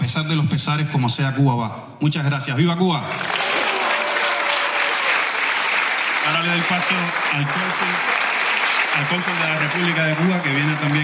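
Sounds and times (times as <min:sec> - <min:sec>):
speech: 0:00.1 - 0:03.5, 0:06.3 - 0:08.2, 0:09.0 - 0:11.0
crowd applause at a public event honoring Cuba: 0:03.0 - 0:11.0.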